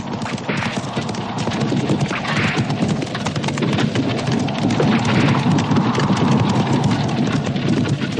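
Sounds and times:
horses galloping pulling a carriage: 0.0 - 8.1
low rumbling: 0.0 - 8.1.

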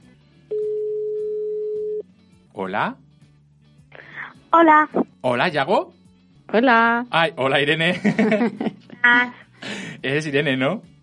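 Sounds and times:
telephone ringback tone while calling: 0.5 - 2.1
speech: 2.6 - 3.0, 4.5 - 10.9
laughter: 7.9 - 9.0.

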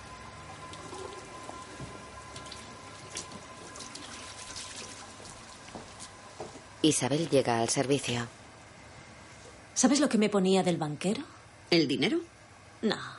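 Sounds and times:
sink tap water splashing as hands are washed in a public restroom: 0.6 - 6.0
speech: 6.8 - 8.4, 9.8 - 13.1.

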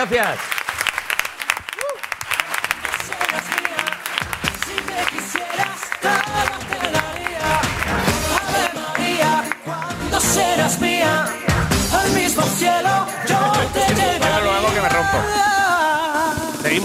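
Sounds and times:
speech: 0.0 - 0.6, 5.0 - 8.0, 10.2 - 15.9
scattered cheers: 0.0 - 10.3
loud sustained audience applause from a large crowd: 0.0 - 11.5.

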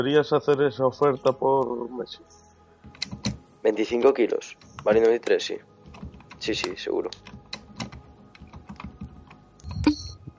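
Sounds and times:
speech: 0.0 - 2.5, 3.1 - 5.7, 6.4 - 7.4
computer keyboard typing: 2.9 - 3.4, 4.0 - 10.2.

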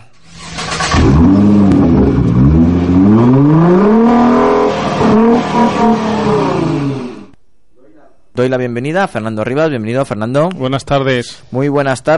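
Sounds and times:
car engine starting and revving: 0.2 - 7.4
speech: 8.4 - 12.1.

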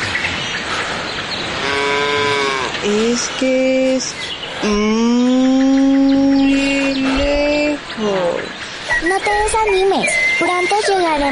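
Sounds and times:
steady noisy background: 0.0 - 11.2
drawn-out cow moo: 1.6 - 2.8
speech: 2.8 - 5.6, 9.0 - 11.2.

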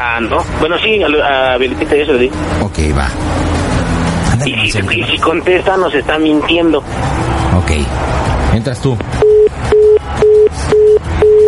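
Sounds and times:
speech: 0.0 - 3.6, 4.4 - 9.2
telephone busy signal: 9.2 - 11.4.

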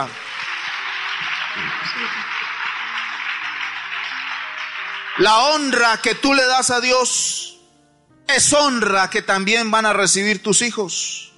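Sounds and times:
speech: 0.0 - 0.2, 1.6 - 2.5, 5.2 - 7.6, 8.3 - 11.3
crowd applauding: 0.0 - 6.8.

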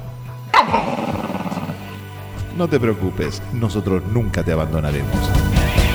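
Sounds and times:
dog barking and growling: 0.5 - 2.1
speech: 2.6 - 5.8.

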